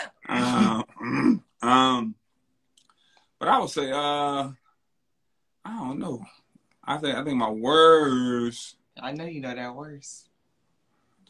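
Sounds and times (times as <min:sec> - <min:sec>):
person clearing throat: 0:00.0 - 0:02.1
speech: 0:03.6 - 0:04.6, 0:05.7 - 0:10.3.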